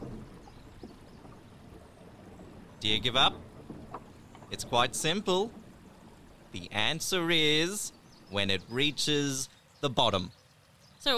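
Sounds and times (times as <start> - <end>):
faint watery wash: 0.0 - 11.1
old boat rumbling while docking at a jetty: 0.0 - 11.1
speech: 2.8 - 3.5, 4.5 - 5.6, 6.5 - 10.4.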